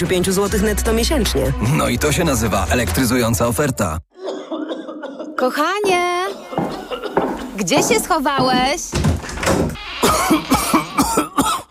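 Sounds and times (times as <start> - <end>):
speech: 0.0 - 4.1, 5.4 - 6.7, 7.6 - 9.6
harsh chesty coughing: 4.2 - 5.6, 6.3 - 7.6, 10.0 - 11.6
laughter: 4.2 - 7.7.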